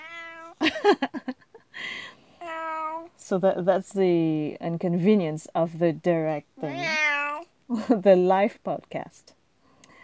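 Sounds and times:
cat meowing: 0.0 - 0.6, 2.4 - 3.1, 6.6 - 7.5
speech: 0.7 - 2.0, 3.3 - 7.0, 7.7 - 9.4.

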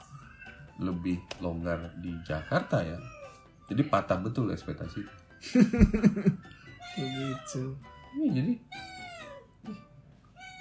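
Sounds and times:
black female cat meowing: 0.0 - 0.7, 1.9 - 3.5, 6.6 - 8.0, 8.6 - 10.5
speech: 0.8 - 8.9
black female cat chirping: 2.3 - 3.4, 6.6 - 7.8, 8.6 - 9.8, 10.4 - 10.5.

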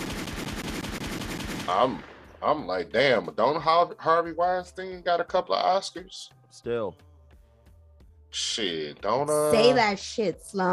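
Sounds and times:
rapid burst of automatic weapon gunfire sound effect: 0.0 - 2.3
speech: 1.7 - 7.1, 8.3 - 10.7.

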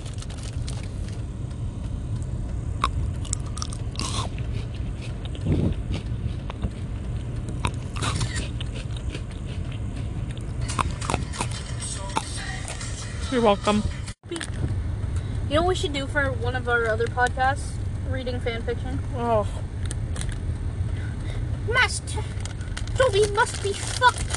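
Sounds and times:
steady low hum: 0.0 - 24.3
Pocky biscuit sticks crunching as they are eaten: 2.8 - 12.8, 22.5 - 24.3
speech: 13.4 - 14.0, 15.5 - 19.7, 23.1 - 24.2.

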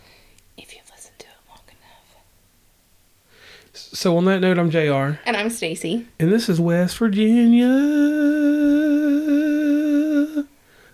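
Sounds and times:
speech: 0.6 - 1.0, 3.7 - 9.4
soft breathy person whispering: 0.6 - 2.3.

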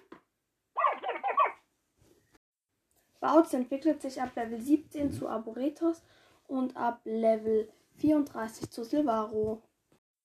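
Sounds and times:
warbling chirpy synthetic cry of a small owl-like video game monster: 0.8 - 1.6
speech: 3.2 - 9.7.

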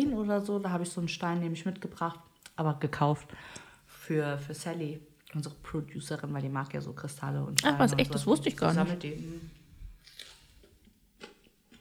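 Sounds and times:
speech: 0.3 - 9.6
person chewing food: 10.0 - 11.7.

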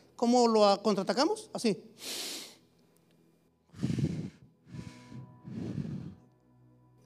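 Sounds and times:
speech: 0.2 - 2.4
person inhaling deeply in a breathing exercise: 2.0 - 2.6, 3.7 - 6.4
heavy gusty exhales in a breathing exercise: 3.7 - 6.2.

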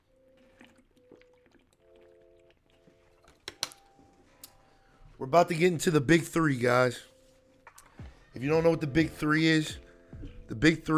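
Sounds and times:
sipping water from a bottle: 0.1 - 3.4
swallowing water: 0.2 - 3.3
speech: 5.2 - 7.1, 8.4 - 9.8, 10.5 - 10.9.

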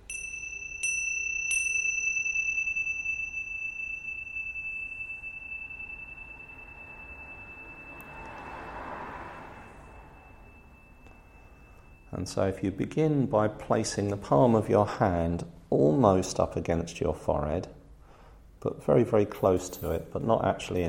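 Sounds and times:
meditation bell ringing: 0.0 - 13.6
speech: 12.2 - 17.8, 18.6 - 20.8.

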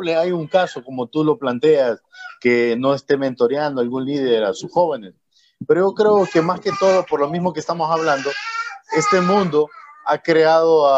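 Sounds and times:
speech: 0.0 - 10.9
young child crying and babbling at home: 6.2 - 7.3, 8.0 - 10.1.

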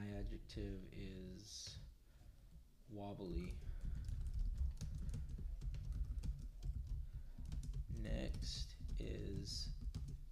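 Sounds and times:
speech: 0.0 - 1.9, 2.9 - 4.0, 8.0 - 9.8
rapid clicking on a computer keyboard: 3.4 - 10.2.

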